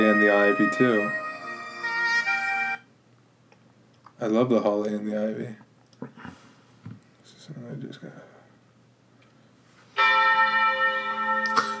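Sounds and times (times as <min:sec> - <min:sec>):
bells ringing in a Christmas song: 0:00.0 - 0:02.8, 0:10.0 - 0:11.7
speech: 0:00.2 - 0:01.2, 0:04.2 - 0:06.4, 0:07.5 - 0:08.3.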